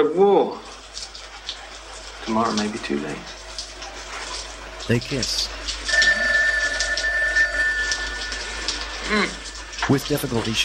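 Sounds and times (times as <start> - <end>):
speech: 0.0 - 1.1, 2.3 - 3.4, 4.9 - 5.6, 9.1 - 10.6
telephone bell ringing: 5.9 - 9.0.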